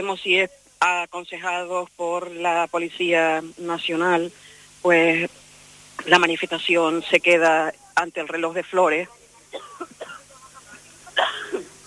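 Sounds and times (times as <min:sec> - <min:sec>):
speech: 0:00.0 - 0:05.4, 0:06.0 - 0:10.0
faint noise: 0:00.0 - 0:11.8
cough: 0:09.5 - 0:10.3, 0:11.2 - 0:11.7.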